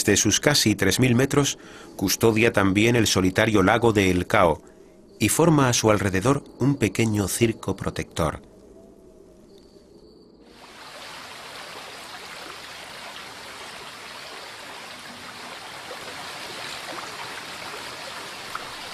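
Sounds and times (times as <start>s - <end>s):
speech: 0.0s - 8.5s
Cinca mountain river rushing: 10.6s - 18.9s.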